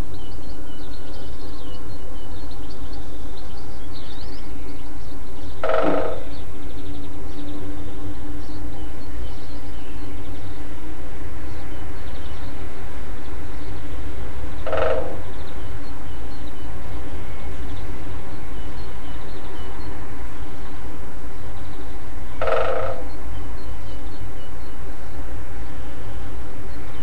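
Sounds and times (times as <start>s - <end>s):
low rumble and hiss: 0.0s - 27.0s
great spotted woodpecker drumming: 5.6s - 6.5s, 14.6s - 15.4s, 22.4s - 23.2s.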